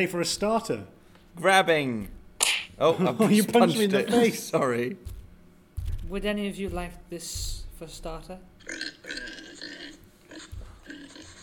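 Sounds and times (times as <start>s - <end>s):
speech: 0.0s - 2.2s, 2.8s - 5.2s, 6.1s - 9.2s
pig grunting and snorting: 8.6s - 11.4s.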